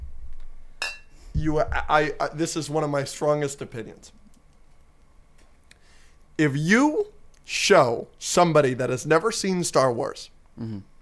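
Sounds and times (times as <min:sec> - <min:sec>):
quiet room hum: 0:00.0 - 0:11.0
glass or metal tableware clinking: 0:00.8 - 0:01.1
speech: 0:01.4 - 0:04.2, 0:06.4 - 0:10.9.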